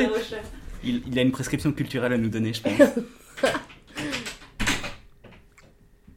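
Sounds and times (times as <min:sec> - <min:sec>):
speech: 0:00.0 - 0:03.8
laughter: 0:02.6 - 0:04.2
door creak and rattle: 0:03.6 - 0:05.8.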